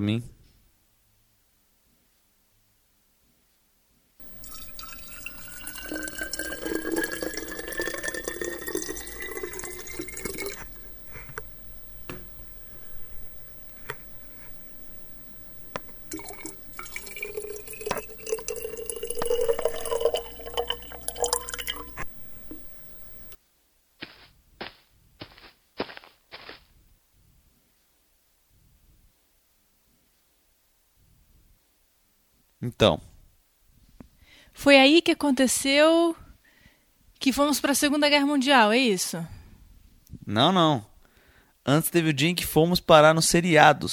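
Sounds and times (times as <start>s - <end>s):
speech: 0.0s - 0.4s, 32.8s - 33.1s, 34.6s - 36.2s, 37.2s - 39.4s, 40.3s - 40.9s, 41.6s - 43.9s
tap running: 4.2s - 23.4s
water splashing and dripping into a sink: 4.2s - 23.4s.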